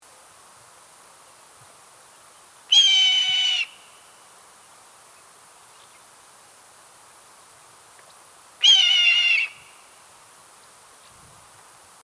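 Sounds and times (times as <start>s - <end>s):
red-tailed hawk: 2.7s - 3.9s, 8.6s - 9.8s.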